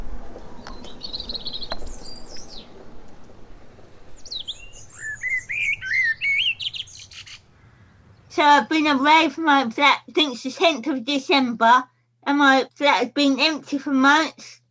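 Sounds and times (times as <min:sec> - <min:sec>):
birds singing during quiet lockdown: 0:00.0 - 0:09.0
speech: 0:08.4 - 0:14.6.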